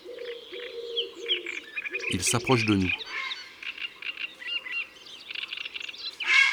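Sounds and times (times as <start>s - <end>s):
European turtle dove cooing: 0.0s - 2.1s
reed warblers singing: 1.2s - 3.6s
speech: 2.1s - 3.1s.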